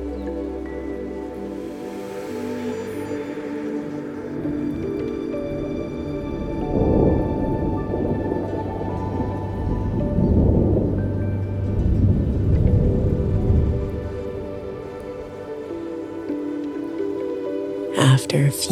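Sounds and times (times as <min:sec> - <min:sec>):
steady rain during a rainstorm: 0:00.0 - 0:18.6
deep thunder rumbles during a rainstorm: 0:04.7 - 0:15.0
speech: 0:18.3 - 0:18.6.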